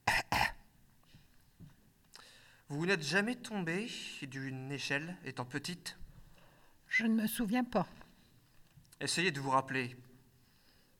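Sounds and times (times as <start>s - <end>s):
patient coughing during a doctor's examination: 0.0s - 0.7s
speech: 2.7s - 6.0s, 7.0s - 8.0s, 9.0s - 10.1s.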